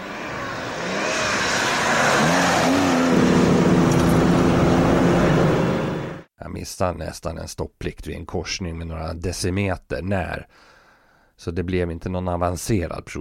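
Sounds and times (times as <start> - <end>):
car engine revving hard: 0.0 - 6.3
speech: 6.6 - 10.7, 11.4 - 13.1.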